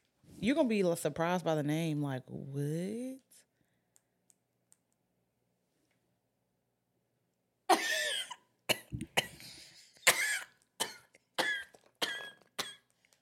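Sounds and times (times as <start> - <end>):
speech: 0.4 - 3.4
harsh raspy coughing fit: 7.7 - 12.8.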